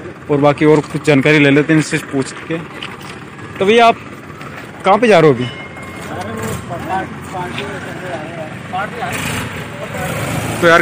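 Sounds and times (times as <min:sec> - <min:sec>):
tractor engine rumbling: 0:00.0 - 0:10.8
speech: 0:00.3 - 0:02.9, 0:03.6 - 0:04.1, 0:04.8 - 0:05.6, 0:06.7 - 0:10.8.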